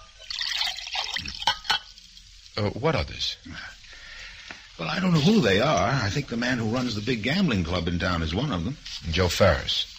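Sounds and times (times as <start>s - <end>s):
water pouring and splashing into a glass: 0.0s - 2.4s
speech: 2.6s - 3.8s, 4.8s - 9.9s.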